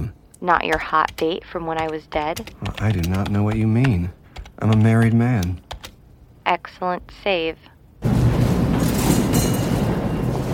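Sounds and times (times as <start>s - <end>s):
speech: 0.4s - 5.6s, 6.5s - 7.7s
subway train rumbling through a Brooklyn subway station: 8.0s - 10.5s.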